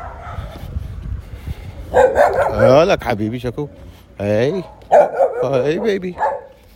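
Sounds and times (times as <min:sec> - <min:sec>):
dogs barking: 0:00.0 - 0:00.6, 0:01.9 - 0:02.9, 0:04.5 - 0:06.6
speech: 0:01.9 - 0:06.3.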